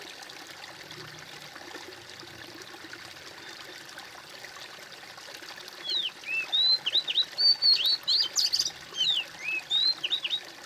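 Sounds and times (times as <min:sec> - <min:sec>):
bird song of high whistles: 0:05.8 - 0:10.5.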